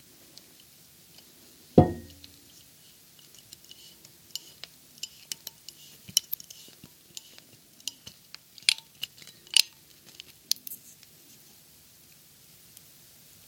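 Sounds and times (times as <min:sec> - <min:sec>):
sharper thuds or pops from opening a wine bottle: 0:01.8 - 0:02.4
metallic scraping and clicking of foil and corkscrew on a Grenache wine bottle: 0:02.5 - 0:11.6.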